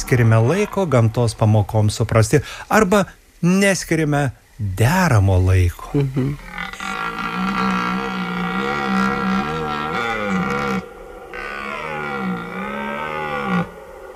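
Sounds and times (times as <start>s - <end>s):
speech: 0.1s - 6.6s
red deer bellowing: 6.4s - 14.1s.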